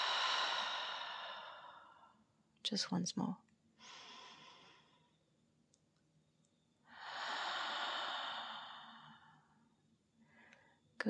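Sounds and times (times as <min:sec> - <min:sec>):
deep breath out through the mouth during a guided deep-breathing exercise: 0:00.0 - 0:02.2, 0:03.8 - 0:05.2, 0:06.9 - 0:09.6
speech: 0:02.7 - 0:03.5.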